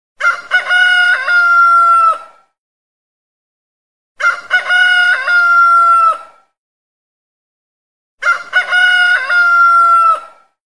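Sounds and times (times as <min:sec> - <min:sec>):
rooster crowing ringtone: 0:00.2 - 0:02.4, 0:04.2 - 0:06.4, 0:08.2 - 0:10.5.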